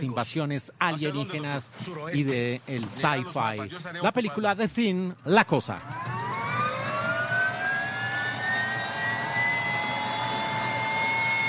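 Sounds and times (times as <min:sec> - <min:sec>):
speech: 0:00.0 - 0:06.0
helicopter turbine engine whining as it spools up for takeoff: 0:05.6 - 0:11.4.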